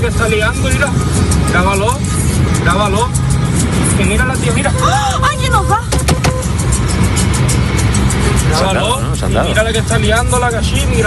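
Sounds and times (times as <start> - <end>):
bus with passengers inside driven recklessly, engine and road roar: 0.0 - 11.0
speech: 0.2 - 6.1, 8.4 - 11.0.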